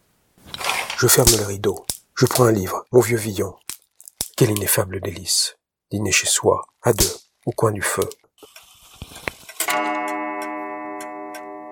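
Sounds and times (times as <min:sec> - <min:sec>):
speech: 0:01.0 - 0:03.6, 0:04.4 - 0:08.5
pendulum clock ticking: 0:09.7 - 0:11.7.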